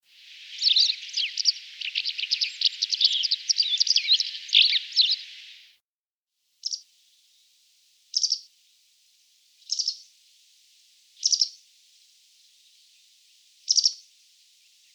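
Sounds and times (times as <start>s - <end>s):
white wagtail calling with rapid high chirps: 0.0s - 5.8s, 6.6s - 7.5s, 8.1s - 8.5s, 9.6s - 10.1s, 11.2s - 14.9s.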